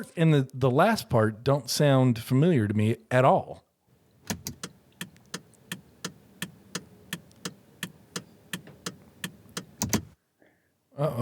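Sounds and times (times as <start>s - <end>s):
speech: 0.0s - 3.6s, 11.0s - 11.2s
Honda Civic car turn signal clicking: 4.0s - 10.2s.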